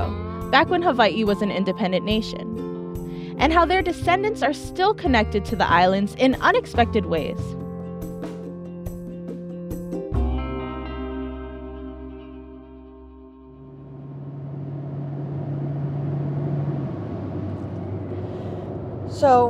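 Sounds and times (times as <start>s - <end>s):
speech: 0.5s - 2.7s, 3.4s - 7.6s, 19.2s - 19.4s
car engine and road rumble driving through Folsom in Northern California: 13.6s - 19.4s.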